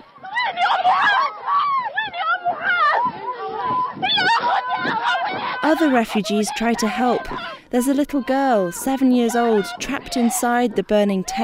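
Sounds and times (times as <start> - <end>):
frantic voices in a refugee camp: 0.0 - 11.4
woman screaming and wailing while running through a refugee camp: 0.2 - 10.6
speech: 5.7 - 11.4.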